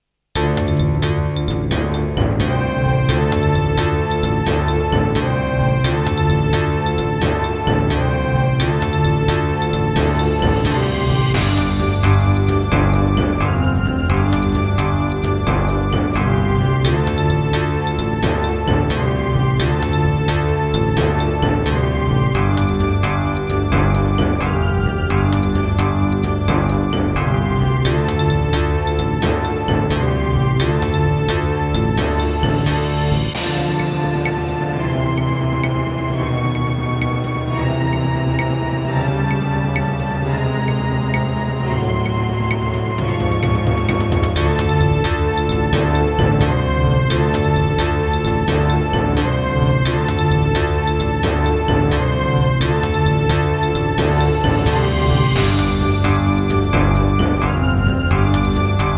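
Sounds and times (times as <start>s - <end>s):
Roland SC-8820 sound module sound: 0.4s - 58.9s.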